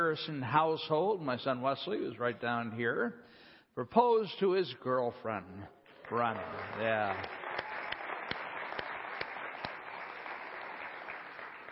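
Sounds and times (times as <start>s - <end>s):
speech: 0.0s - 7.4s
crowd applauding with many hands clapping: 5.9s - 11.7s.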